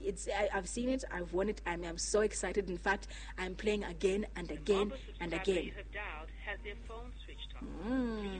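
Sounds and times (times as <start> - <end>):
speech: 0.0 - 8.3
recorded voice over a thin narrow telephone line: 4.0 - 8.3.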